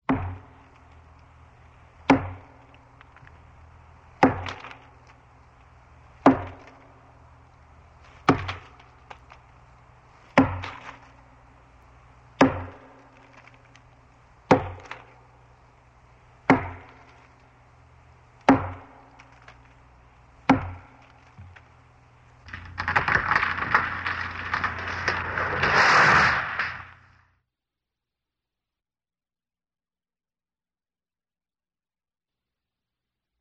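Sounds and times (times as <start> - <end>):
tree chopping: 0.1 - 15.5, 16.4 - 17.6, 18.4 - 21.8, 22.4 - 26.9.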